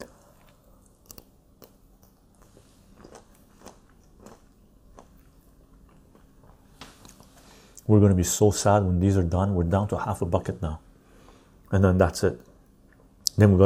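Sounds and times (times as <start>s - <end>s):
autumn olives being broken open and munched: 0.0s - 7.4s
speech: 7.9s - 10.8s, 11.7s - 12.5s, 13.4s - 13.6s.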